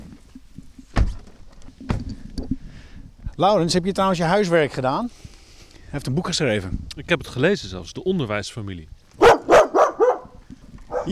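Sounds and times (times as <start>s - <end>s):
speech: 3.4s - 5.3s, 5.9s - 9.0s
dog barking: 9.2s - 11.1s.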